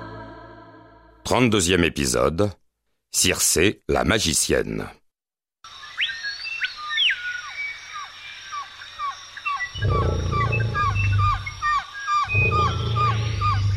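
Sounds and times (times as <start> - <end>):
speech: 1.3 - 5.0
birds chirping and whistling: 5.7 - 13.7
lions roaring loudly: 9.8 - 13.7.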